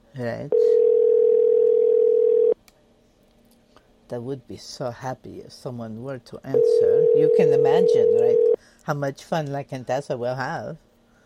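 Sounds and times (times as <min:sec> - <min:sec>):
speech: 0:00.2 - 0:01.1, 0:04.1 - 0:10.9
ringing tone of an unanswered telephone call: 0:00.5 - 0:02.6, 0:06.6 - 0:08.6.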